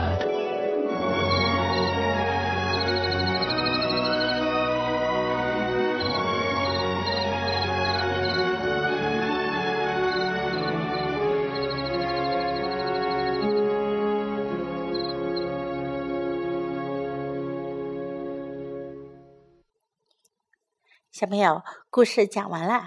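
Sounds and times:
soft sustained music: 0.0 - 19.7
high rapid cricket-like chirping trill: 1.2 - 4.5, 6.0 - 8.5, 9.9 - 13.7, 14.8 - 15.6
speech: 21.2 - 22.8.

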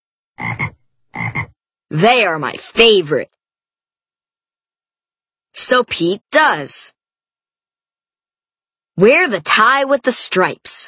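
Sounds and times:
toad croaking with throaty double pulses: 0.4 - 1.6
speech: 1.9 - 3.4, 5.6 - 7.0, 9.0 - 10.8.

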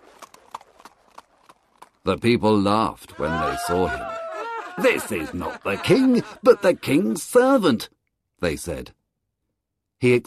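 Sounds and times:
horse hooves clip-clopping: 0.0 - 2.0
speech: 2.0 - 4.2, 4.8 - 9.0, 10.0 - 10.2
laughter: 3.1 - 7.6.

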